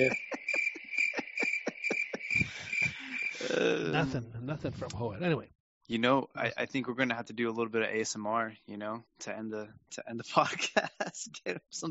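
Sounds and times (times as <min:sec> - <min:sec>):
speech: 0:00.0 - 0:00.2, 0:03.4 - 0:11.8
crickets chirping: 0:00.0 - 0:04.1
laughter: 0:00.0 - 0:04.2, 0:10.1 - 0:11.6.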